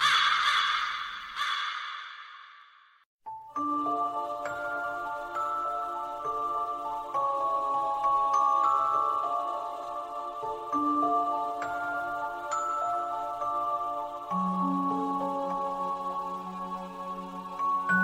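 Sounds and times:
raven giving harsh raspy caws: 0:00.0 - 0:02.7
sustained chiming music with bell-like tones: 0:03.2 - 0:18.0.

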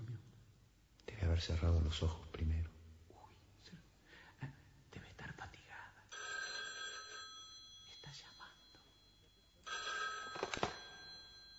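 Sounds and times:
speech: 0:01.4 - 0:02.7
telephone ringing: 0:06.1 - 0:11.5.

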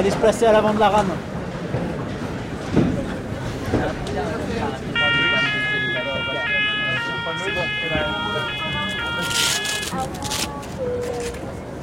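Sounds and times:
speech: 0:00.0 - 0:01.3, 0:07.3 - 0:08.6
funicular train rumbling uphill toward a glacier at Val Claret Tignes: 0:00.0 - 0:11.8
repeating two-tone warning signal: 0:04.9 - 0:10.2.

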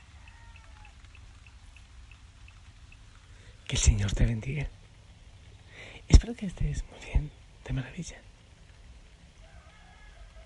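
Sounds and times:
faint roosters crowing: 0:00.0 - 0:01.6, 0:09.2 - 0:10.4
light rain in the countryside: 0:00.0 - 0:10.4
speech: 0:03.7 - 0:04.8, 0:06.1 - 0:08.3.

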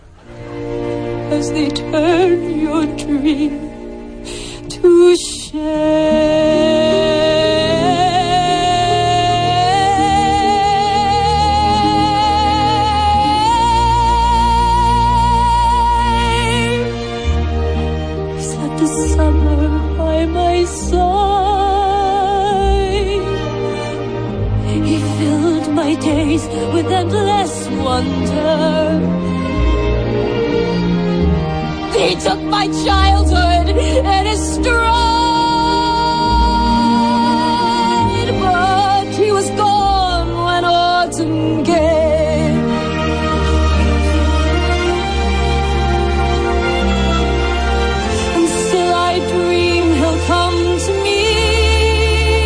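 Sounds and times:
orchestra backing a film musical song: 0:00.0 - 0:52.4
speech: 0:01.3 - 0:03.6, 0:04.2 - 0:07.1
woman singing a slow impassioned solo ballad with heavy vibrato: 0:01.3 - 0:03.8, 0:04.5 - 0:16.9, 0:18.4 - 0:23.4, 0:24.7 - 0:29.1, 0:31.9 - 0:42.7, 0:48.1 - 0:52.4.

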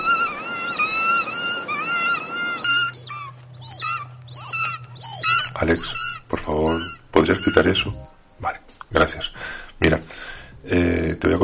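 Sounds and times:
harsh shrieking bird calls from a film about mutated birds: 0:00.0 - 0:08.1
low steady hum: 0:00.0 - 0:11.4
speech: 0:05.6 - 0:11.4.

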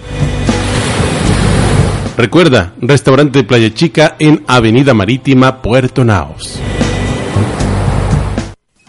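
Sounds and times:
ocean waves breaking on the shore: 0:00.0 - 0:02.4, 0:06.6 - 0:08.6
speech: 0:02.2 - 0:06.7.

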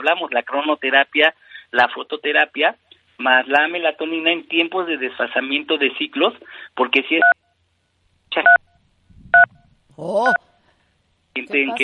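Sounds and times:
speech: 0:00.0 - 0:07.4, 0:08.4 - 0:08.6, 0:10.0 - 0:10.4, 0:11.4 - 0:11.8
cellphone keypad press dual-tone beep: 0:08.5 - 0:09.6
person exclaiming: 0:09.9 - 0:10.4, 0:11.5 - 0:11.8.

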